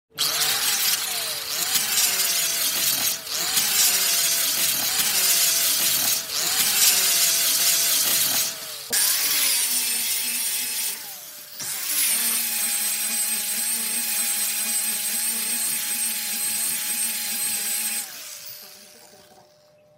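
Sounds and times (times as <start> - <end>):
sandpaper grinding machine sanding: 0.1 - 19.6.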